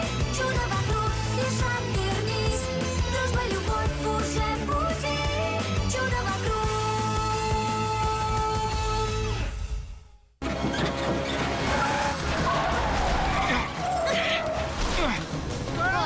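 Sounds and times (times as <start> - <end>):
tune: 0.0 - 16.0
vehicle with broken brakes skidding, tires squealing: 10.4 - 16.0
voices shouting: 11.6 - 15.2, 15.8 - 16.0.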